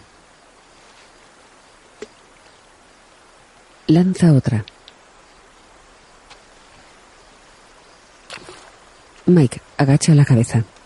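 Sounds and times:
flowing river water: 0.0 - 10.8
speech: 3.9 - 4.7, 9.3 - 10.7
sharp knocks or splashes: 8.3 - 8.8.

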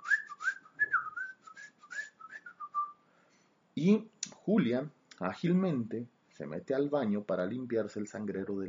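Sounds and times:
man whistling a short wandering melody: 0.0 - 3.0
speech: 3.8 - 8.6.

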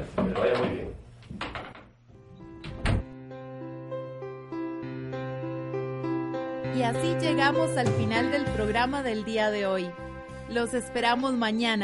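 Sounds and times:
door opening and closing: 0.2 - 3.2
gentle sustained music: 2.2 - 11.8
speech: 6.8 - 11.8.

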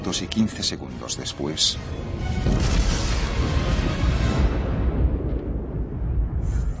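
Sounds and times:
speech: 0.1 - 4.1
deep fire-causing explosion in the torpedo room of a Russian submarine: 2.1 - 6.7.

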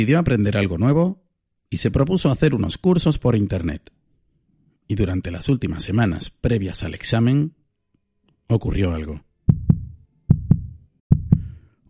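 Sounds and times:
speech: 0.0 - 4.0, 4.9 - 7.6, 8.5 - 9.7
heavy low heartbeat: 9.5 - 11.7.

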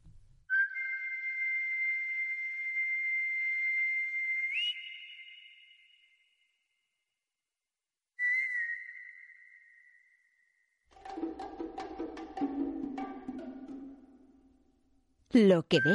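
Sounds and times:
whistled melody in orchestral film score: 0.5 - 6.7, 8.2 - 10.8, 15.7 - 15.9
orchestral film score music: 11.0 - 14.7
speech: 15.4 - 15.9.

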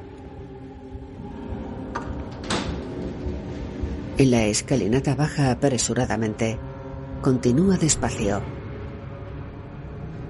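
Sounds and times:
low continuous rumble: 0.0 - 10.2
door closing: 1.8 - 3.4
speech: 4.2 - 8.6.

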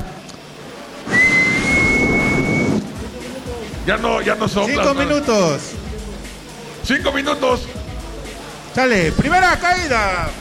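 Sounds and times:
crowd noise at a sumo wrestling match: 0.0 - 10.3
referee's whistle blast starting a sumo wrestling match: 1.1 - 2.8
speech: 3.9 - 5.8, 6.8 - 7.8, 8.8 - 10.3.

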